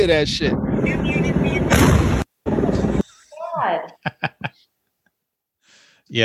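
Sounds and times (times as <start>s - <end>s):
speech: 0.0s - 2.1s, 6.1s - 6.2s
crackling and rumbling of exploding fireworks: 0.0s - 3.0s
bomb squad truck loaded with fireworks exploding in a loud blast: 0.2s - 3.0s
laughter: 2.9s - 4.6s.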